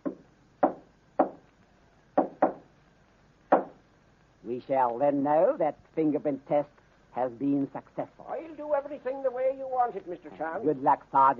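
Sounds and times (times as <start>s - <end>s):
knocking on a wooden living room door: 0.0s - 1.4s, 2.2s - 2.6s
speech: 4.5s - 11.3s.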